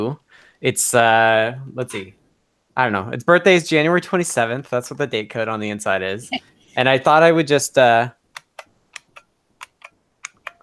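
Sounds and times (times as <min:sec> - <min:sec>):
speech: 0:00.0 - 0:02.2, 0:02.8 - 0:08.2
IBM Model M buckling spring keyboard typing: 0:08.4 - 0:10.6.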